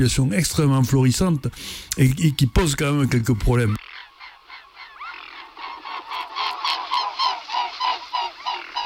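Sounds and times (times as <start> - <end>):
speech: 0.0 - 3.8
mute swan giving hoarse nasal honking calls: 3.8 - 8.8.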